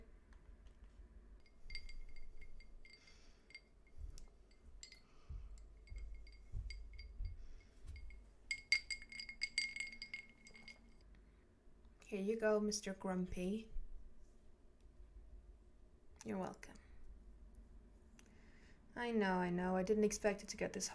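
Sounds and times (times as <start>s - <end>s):
glasses clinking while drinks are refilled: 1.4s - 11.0s
speech: 12.1s - 13.8s, 16.3s - 16.8s, 19.0s - 20.9s.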